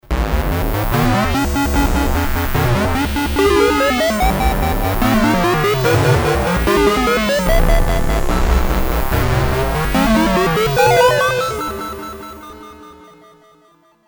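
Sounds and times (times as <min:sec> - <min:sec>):
8-bit sound effects on a Roland JD800 synthesizer: 0:00.9 - 0:11.2.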